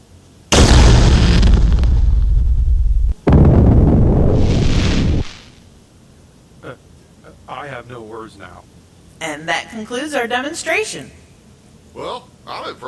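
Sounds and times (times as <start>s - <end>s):
rifle shot: 0.5s - 5.6s
small nitrogen explosion: 0.5s - 5.6s
speech: 7.9s - 11.2s, 11.9s - 12.8s.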